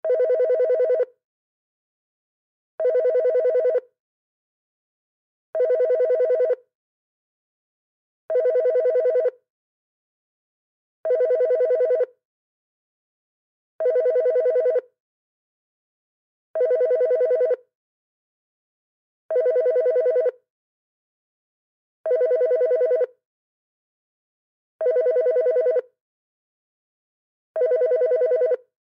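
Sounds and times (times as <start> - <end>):
electronic office telephone ringing: 0.1 - 1.1, 2.8 - 3.8, 5.6 - 6.6, 8.3 - 9.4, 11.1 - 12.1, 13.8 - 14.9, 16.6 - 17.6, 19.3 - 20.4, 22.1 - 23.1, 24.8 - 25.9, 27.6 - 28.7.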